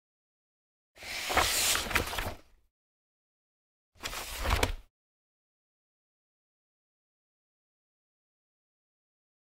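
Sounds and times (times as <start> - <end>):
book closing: 1.0 - 2.4, 4.0 - 4.8.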